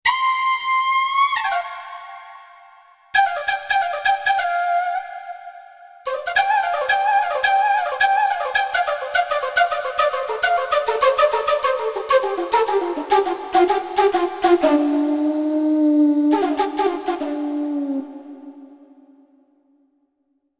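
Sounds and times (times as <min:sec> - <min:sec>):
shakuhachi: 0:00.0 - 0:19.4.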